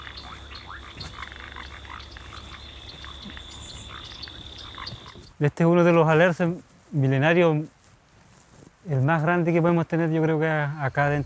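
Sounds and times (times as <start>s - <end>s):
chorus of frogs and toads croaking in a wetland beneath giant mañío trees: 0.0s - 5.4s
speech: 5.4s - 7.8s, 8.9s - 11.2s.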